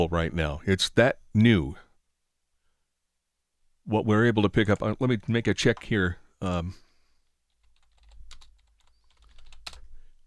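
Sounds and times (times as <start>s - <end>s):
speech: 0.0s - 1.8s, 3.9s - 6.8s
news presenter typing on a computer keyboard: 7.5s - 9.8s.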